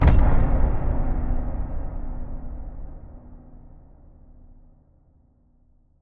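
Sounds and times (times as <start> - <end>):
metallic impact boom: 0.0 - 4.6.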